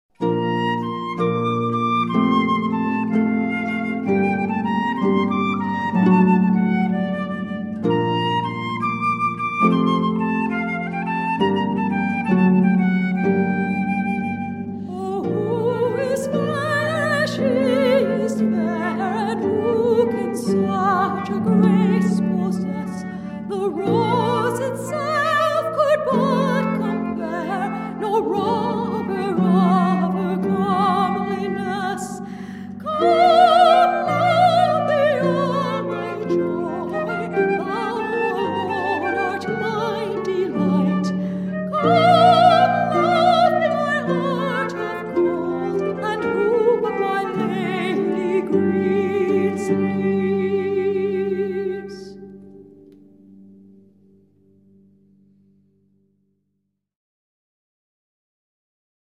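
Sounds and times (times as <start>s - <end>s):
ceremonial flute: 0.1s - 52.8s
ceremonial harp: 0.1s - 55.2s
person singing at a ceremony: 14.9s - 52.4s.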